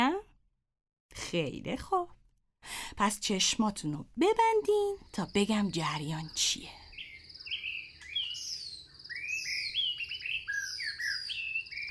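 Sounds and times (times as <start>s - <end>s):
speech: 1.3s - 2.2s, 3.0s - 6.8s
several birds chirping and warbling in a forest: 4.5s - 11.8s.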